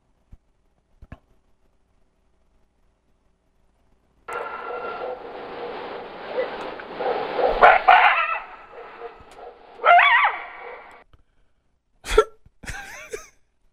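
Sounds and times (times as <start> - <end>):
wolf snarling howl: 7.5 - 11.0
short sharp wolf yelps: 9.8 - 10.9.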